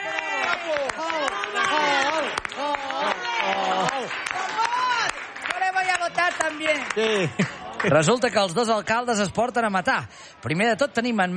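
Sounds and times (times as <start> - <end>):
crowd clapping and cheering: 0.0 - 8.6
speech: 6.9 - 11.3.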